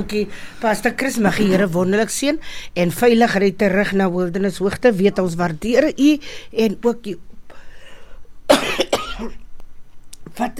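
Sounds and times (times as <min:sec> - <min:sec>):
speech: 0:00.0 - 0:07.3, 0:09.2 - 0:09.4, 0:10.4 - 0:10.5
harsh coughs from a scratchy throat: 0:08.5 - 0:09.4.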